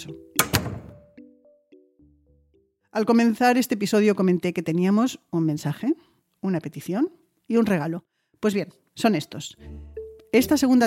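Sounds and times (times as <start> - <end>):
speech: 0.0 - 0.3, 2.9 - 10.8
faint latch clicks: 0.4 - 1.0
door slamming shut with a heavy double thud: 0.4 - 1.1.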